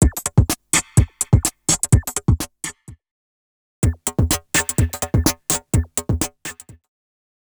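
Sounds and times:
electro music at 126 BPM: 0:00.0 - 0:02.5, 0:03.8 - 0:06.8.

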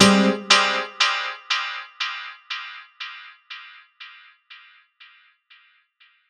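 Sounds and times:
house piano stab: 0:00.0 - 0:01.4.

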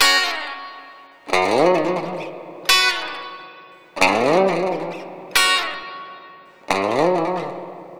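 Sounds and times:
lounge guitar in F sharp: 0:00.0 - 0:07.9.

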